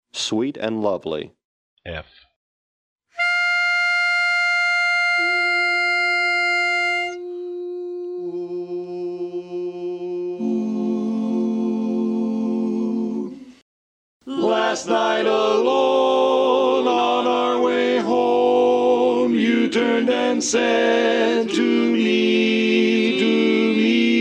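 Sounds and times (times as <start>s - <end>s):
baritone singing in a barbershop quartet: 3.2s - 13.4s, 14.3s - 24.1s.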